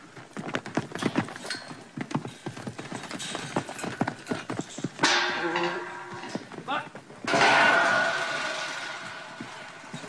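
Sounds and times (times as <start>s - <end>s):
stock horse hooves clip-clopping across a hard yard: 0.0s - 10.0s
rustling and scraping movement: 2.3s - 10.0s.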